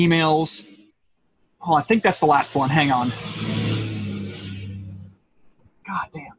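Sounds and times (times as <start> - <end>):
speech: 0.0 - 0.7, 1.6 - 3.6, 5.9 - 6.3
truck engine roaring by outside: 1.9 - 5.2.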